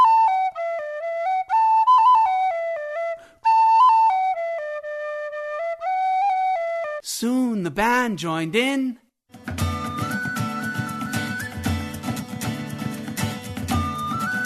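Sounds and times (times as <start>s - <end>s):
penny whistle playing a sweet tune: 0.0s - 7.0s, 9.6s - 12.8s, 13.6s - 14.4s
speech: 7.2s - 9.0s.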